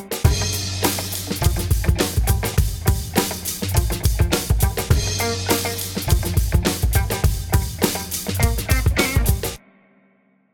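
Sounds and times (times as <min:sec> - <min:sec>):
bass drum: 0:00.3 - 0:09.6.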